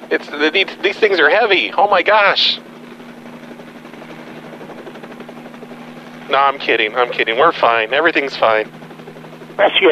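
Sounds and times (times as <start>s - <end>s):
helicopter rotor and engine noise: 0.0s - 9.9s
speech: 0.1s - 2.7s, 6.3s - 8.8s, 9.6s - 9.9s.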